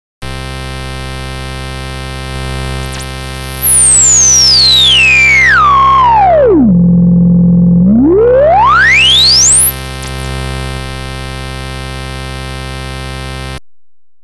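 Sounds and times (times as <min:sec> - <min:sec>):
Roland SH-101 synthesizer resonance: 0:02.8 - 0:13.6.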